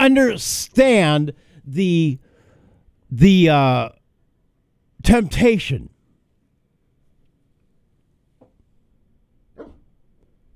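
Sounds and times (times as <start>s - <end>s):
speech: 0.0s - 2.2s, 3.1s - 4.0s, 5.0s - 5.9s
dog barking: 9.6s - 9.9s.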